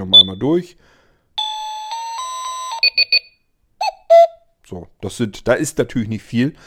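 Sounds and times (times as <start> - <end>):
speech: 0.0 - 1.0, 4.7 - 6.6
electronic alarm clock ringtones: 1.4 - 3.4.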